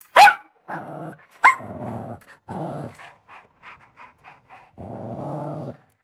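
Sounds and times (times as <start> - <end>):
small dog yelping and barking: 0.1 - 0.4, 1.4 - 1.7
small dog panting: 2.2 - 5.0.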